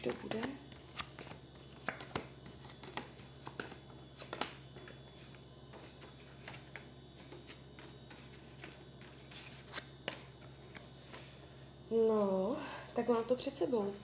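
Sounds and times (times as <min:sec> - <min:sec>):
speech: 0:00.0 - 0:00.6, 0:12.0 - 0:14.0
playing cards being shuffled during a card reading: 0:00.0 - 0:11.2.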